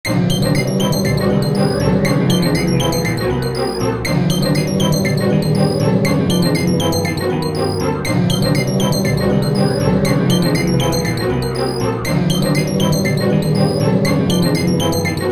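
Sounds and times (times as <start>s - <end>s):
dark cave ambience: 0.1s - 15.3s.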